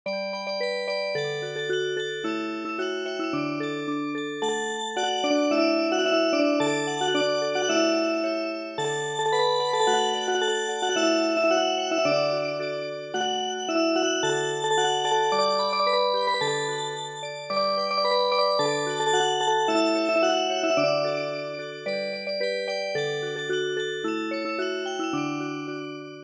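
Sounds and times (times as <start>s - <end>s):
music box: 0.1s - 26.2s.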